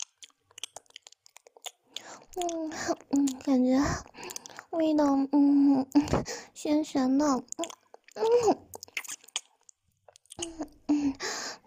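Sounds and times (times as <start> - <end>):
person chewing food: 0.0 - 4.8, 7.4 - 10.9
speech: 2.4 - 8.7.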